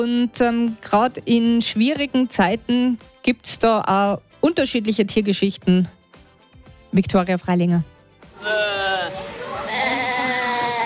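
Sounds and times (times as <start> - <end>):
speech: 0.0 - 6.0, 6.9 - 9.2
mother goat bleating for her kids: 8.4 - 10.8.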